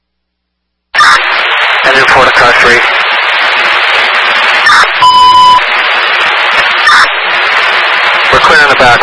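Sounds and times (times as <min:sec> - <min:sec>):
steady radio static: 0:01.0 - 0:09.0
speech: 0:02.0 - 0:03.0
brief blips: 0:04.6 - 0:05.7, 0:06.8 - 0:07.2
fire dispatch electronic alert tone burst: 0:04.7 - 0:05.6.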